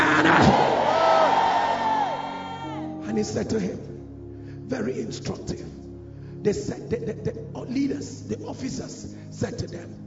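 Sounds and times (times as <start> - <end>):
large crowd shouting and cheering with rising whoops: 0.0 - 3.4
speech: 3.2 - 4.0, 4.7 - 5.8, 6.4 - 10.0.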